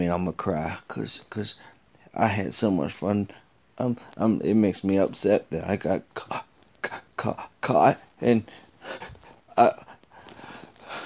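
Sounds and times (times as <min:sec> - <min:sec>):
speech: 0:00.0 - 0:09.9
heavy ragged breathing: 0:08.4 - 0:11.0.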